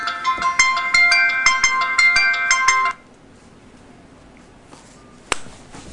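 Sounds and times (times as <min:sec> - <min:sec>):
phone ringtone of an incoming call: 0:00.0 - 0:03.0.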